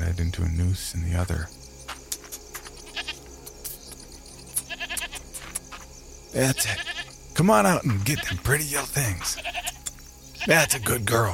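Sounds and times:
speech: 0.2s - 1.6s, 6.3s - 9.6s, 10.4s - 11.3s
goat bleating: 2.9s - 3.2s, 4.6s - 5.5s, 6.5s - 7.1s, 8.0s - 8.4s, 9.2s - 11.0s.

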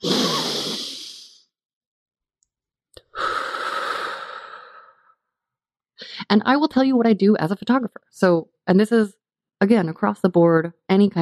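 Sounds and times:
steady long exhale: 0.0s - 1.4s, 3.1s - 5.2s
long deep breath inhale before a portrait session: 0.0s - 1.5s, 3.0s - 5.2s
speech: 6.3s - 11.1s.

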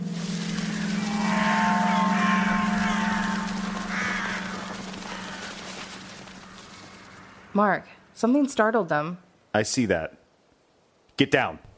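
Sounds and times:
steady low engine drone: 0.0s - 8.1s
flock of crows cawing: 0.4s - 7.6s
speech: 7.6s - 10.2s, 11.2s - 11.7s.

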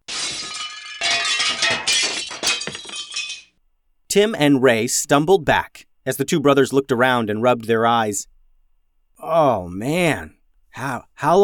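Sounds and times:
dishes crashing and shattering on a hard floor: 0.0s - 3.6s
speech: 4.1s - 8.3s, 9.2s - 11.4s.

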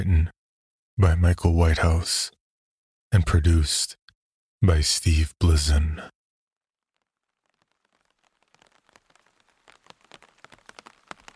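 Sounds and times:
speech: 0.0s - 0.4s, 1.0s - 2.4s, 3.1s - 4.0s, 4.6s - 6.2s
sharper splashes of rain: 6.8s - 11.3s
heavy rain falling: 7.4s - 11.3s.

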